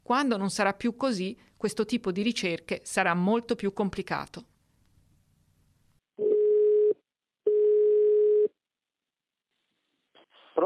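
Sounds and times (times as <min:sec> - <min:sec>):
speech: 0:00.1 - 0:04.5
landline ringing tone beeps while calling a home landline in Italy: 0:06.2 - 0:08.5.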